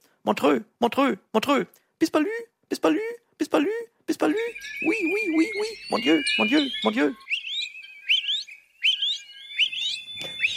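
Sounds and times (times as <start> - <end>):
speech: 0.3 - 7.3
sustained high tone: 4.2 - 10.5
bird singing bright rising whistled phrases: 4.3 - 10.5.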